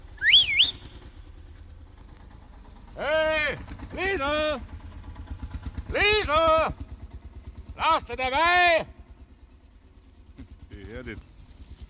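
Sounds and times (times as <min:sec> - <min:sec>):
person whistling at a woman: 0:00.2 - 0:01.0
speech: 0:03.0 - 0:04.8, 0:07.8 - 0:08.9.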